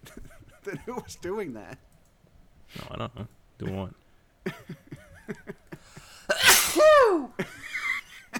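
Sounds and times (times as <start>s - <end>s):
speech: 0.1s - 1.9s, 2.7s - 4.7s
sneeze: 6.3s - 7.3s.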